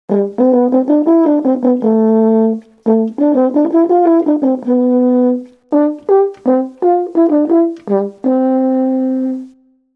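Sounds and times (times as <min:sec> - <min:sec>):
horn wind instrument: 0:00.1 - 0:09.7.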